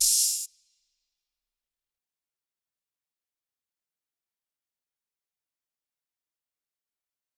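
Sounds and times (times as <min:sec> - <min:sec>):
open hi-hat: 0:00.0 - 0:00.5.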